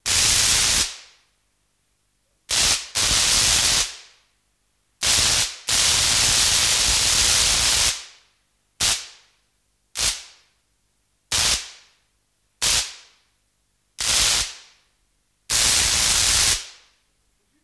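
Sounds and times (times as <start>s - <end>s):
variable electric arc sparking: 0.0s - 1.2s, 2.5s - 4.2s, 5.0s - 9.3s, 10.0s - 10.5s, 11.3s - 12.0s, 12.6s - 13.2s, 14.0s - 14.8s, 15.5s - 17.0s.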